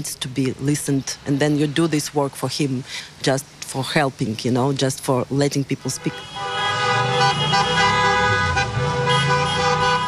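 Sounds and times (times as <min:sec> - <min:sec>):
speech: 0:00.0 - 0:06.5
street noise: 0:00.0 - 0:10.0
car horns honking at a street protest: 0:06.0 - 0:10.0.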